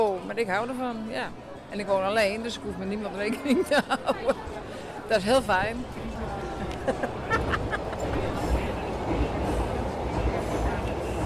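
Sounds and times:
indistinct crowd murmur: 0.0s - 11.2s
speech: 0.3s - 6.2s, 6.9s - 7.2s
laughter: 3.3s - 4.7s, 6.3s - 8.8s
metro train rumbling overhead: 5.4s - 11.2s.

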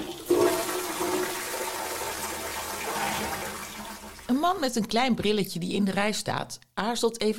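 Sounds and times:
toilet flushing: 0.0s - 4.4s
speech: 4.3s - 7.3s.

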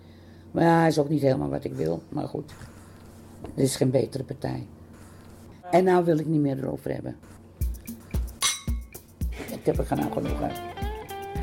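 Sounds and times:
speech: 0.6s - 2.8s, 3.4s - 4.8s, 5.7s - 7.4s, 9.6s - 10.7s
glasses clinking together in a toast: 8.4s - 8.9s.

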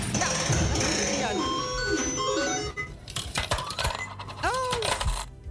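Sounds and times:
bright chiming coin sound effect: 0.1s - 4.1s
sharp metallic coin clinks: 3.1s - 5.3s.

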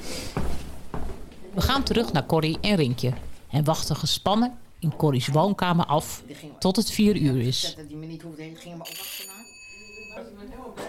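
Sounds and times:
speech: 1.6s - 9.2s
electronic doorbell ringing: 8.8s - 10.4s.

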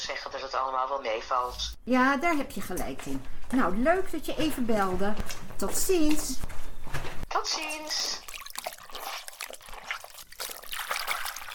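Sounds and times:
speech: 0.2s - 8.2s
water trickling and splashing in a bath: 7.8s - 11.5s.

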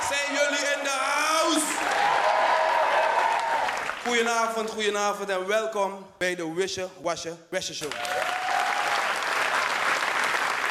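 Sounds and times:
crowd applauding for a DJ on stage: 0.0s - 4.2s, 7.8s - 10.6s
speech: 4.1s - 8.3s.

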